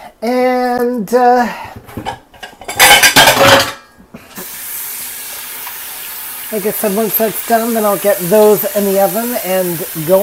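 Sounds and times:
soft steady hiss: 0.0 - 10.2
speech: 0.2 - 2.2, 6.5 - 10.2
metallic clattering as raw chicken drumsticks are moved onto a baking sheet: 1.9 - 3.8.

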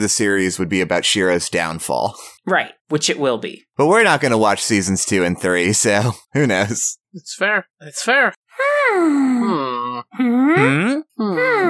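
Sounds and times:
speech: 0.0 - 11.6
people imitating Minecraft villager noises with nasal moaning grunts: 9.4 - 11.6.

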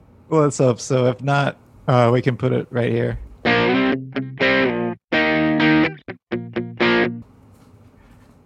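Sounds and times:
speech: 0.3 - 3.3, 4.0 - 4.5
heavily distorted electric guitar chord stabs: 3.4 - 7.2.

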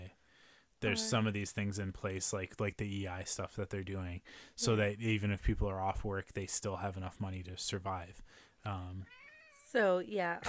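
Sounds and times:
speech: 0.8 - 10.4
cat meowing with loud drawn-out cries: 9.1 - 9.7.

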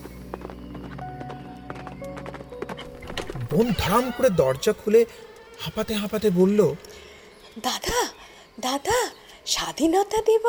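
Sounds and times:
horse hooves clip-clopping: 0.0 - 6.0
speech: 3.5 - 10.4.

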